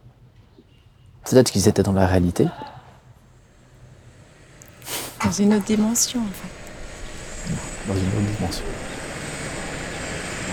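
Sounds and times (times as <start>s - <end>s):
speech: 1.3s - 2.7s, 5.4s - 6.6s, 7.9s - 8.9s
patient transport helicopter lifting off north of Lausanne: 3.3s - 10.5s.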